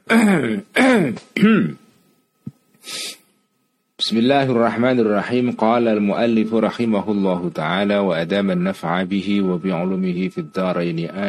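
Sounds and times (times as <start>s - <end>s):
short breathy cough-like huff: 0.0s - 1.8s
voiced throat-clearing grunts: 0.0s - 1.8s
speech: 0.1s - 1.8s, 2.8s - 3.2s, 4.0s - 11.2s.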